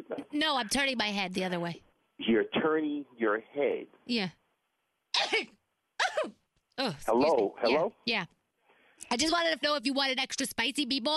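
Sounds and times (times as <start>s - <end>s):
speech: 0.4s - 4.4s, 5.2s - 5.6s, 6.2s - 8.4s, 9.1s - 11.1s
person coughing harshly over food being cooked: 5.2s - 6.4s.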